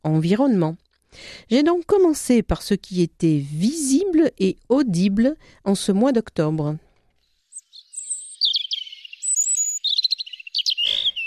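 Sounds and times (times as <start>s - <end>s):
speech: 0.0s - 6.8s
European robin singing: 7.4s - 11.2s.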